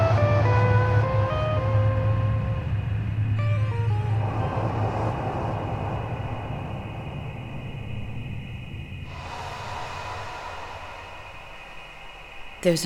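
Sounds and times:
distant car traffic rumble: 0.0s - 9.3s
distant aircraft drone: 0.0s - 12.6s
faint high whine: 0.0s - 12.8s
speech: 12.6s - 12.8s.

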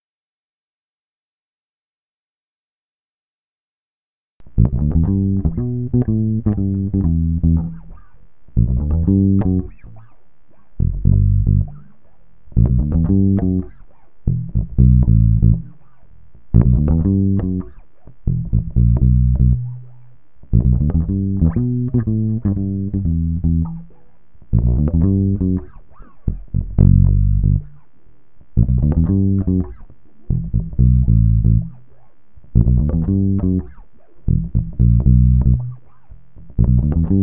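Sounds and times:
jazzy guitar chords in E minor at 120 bpm: 4.4s - 37.2s.

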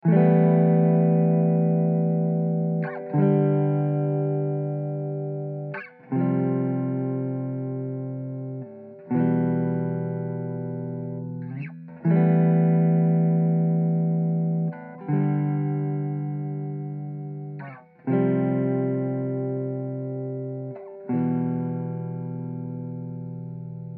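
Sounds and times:
guitar chords in A minor at 160 BPM: 0.0s - 23.9s.

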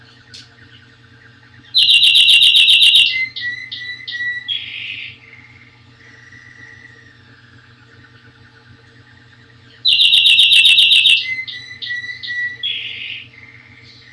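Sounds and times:
canary soft twittering: 0.1s - 7.4s, 8.0s - 14.1s
canary singing buzzy trill, whistled notes and lower warble: 1.5s - 7.2s, 9.7s - 14.1s.

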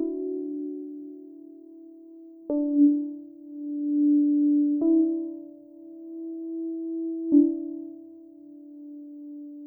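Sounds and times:
synth in G at 100 bpm: 0.0s - 9.6s.

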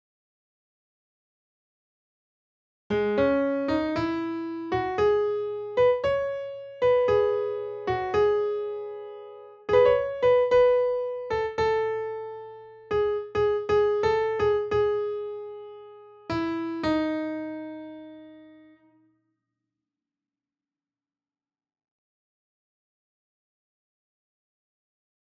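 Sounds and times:
piano melody: 2.9s - 18.9s.

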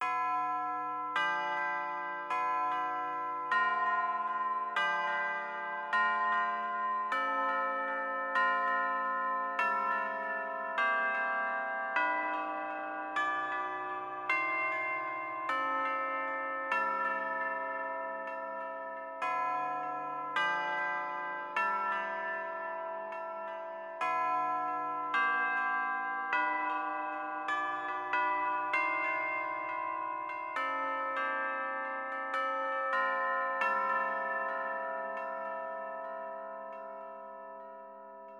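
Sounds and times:
tubular bell in C: 0.0s - 38.3s.

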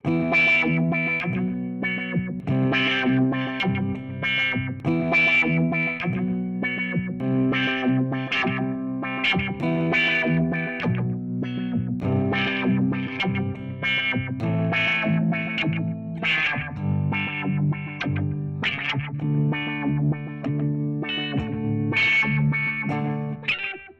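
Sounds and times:
auto-wah chord progression: 0.0s - 23.7s.

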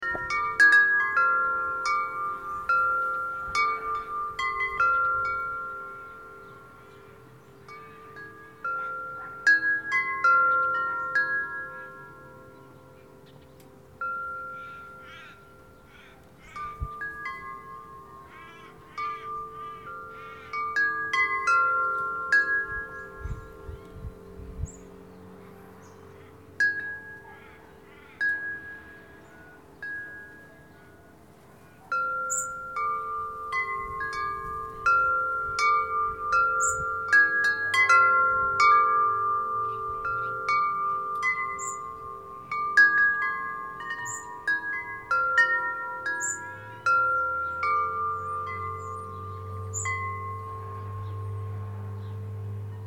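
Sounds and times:
local traffic: 0.0s - 52.8s
wind chimes: 0.0s - 52.8s
crows cawing: 14.4s - 16.6s, 17.9s - 21.2s, 25.4s - 26.6s, 27.2s - 29.6s.

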